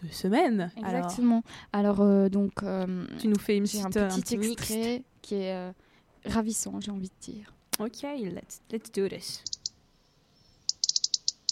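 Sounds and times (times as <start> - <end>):
speech: 0.0 - 9.6
European robin singing: 9.3 - 11.5.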